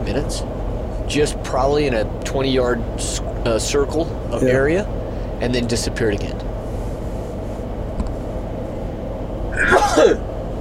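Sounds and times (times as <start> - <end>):
low steady hum: 0.0 - 10.5
speech: 0.1 - 6.5, 9.6 - 10.3
human sneeze: 9.6 - 10.2.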